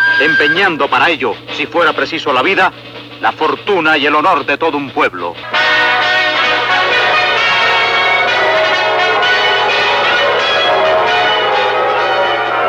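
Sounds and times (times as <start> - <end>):
speech: 0.2 - 5.8
bronze bell ringing joyfully in a continuous peal: 5.6 - 12.6.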